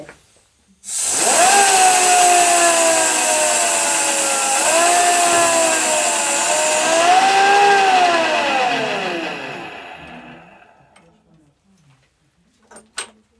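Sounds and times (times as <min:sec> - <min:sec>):
loud hiss of compressed air being released: 0:00.8 - 0:10.8.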